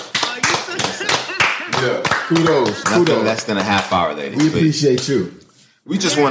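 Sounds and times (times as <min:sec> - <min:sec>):
hand claps: 0:00.0 - 0:05.3
people laughing: 0:00.3 - 0:03.4
speech: 0:01.8 - 0:06.2.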